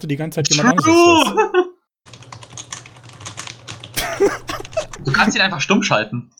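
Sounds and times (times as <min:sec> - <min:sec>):
speech: 0:00.0 - 0:01.6, 0:05.2 - 0:06.3
laughter: 0:01.0 - 0:01.8, 0:04.0 - 0:05.3
typing on a computer keyboard: 0:02.1 - 0:05.0.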